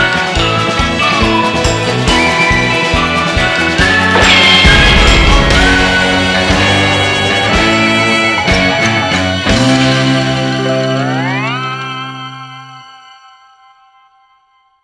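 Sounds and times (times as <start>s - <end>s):
ringtone cutscene music with sound effects: 0.1s - 13.2s.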